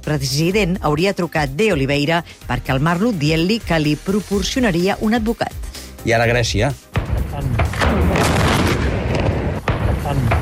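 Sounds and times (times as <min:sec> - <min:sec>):
speech: 0:00.1 - 0:07.5
explosions at a military base: 0:07.0 - 0:10.4
sharp booming impacts: 0:07.0 - 0:10.4.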